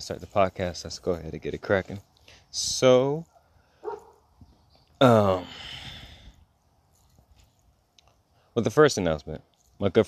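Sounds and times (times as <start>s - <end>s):
speech: 0.0s - 3.3s, 5.0s - 5.8s, 8.6s - 10.0s
dogs barking: 3.8s - 4.2s.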